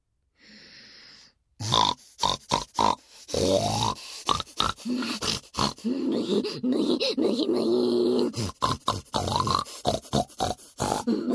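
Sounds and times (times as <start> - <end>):
breathy sniff: 0.4 - 7.2, 9.3 - 11.3
person imitating pig snorting grunts: 1.6 - 11.3
speech: 3.5 - 4.0, 4.8 - 9.6.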